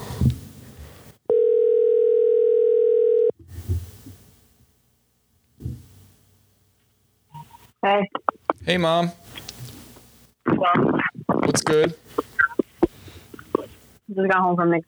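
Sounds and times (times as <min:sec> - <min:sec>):
rustling noise: 0:00.0 - 0:01.2, 0:03.4 - 0:04.8, 0:05.4 - 0:14.0
phone ringing tone: 0:01.3 - 0:03.4
speech: 0:07.9 - 0:09.4, 0:10.6 - 0:12.1, 0:14.2 - 0:14.8.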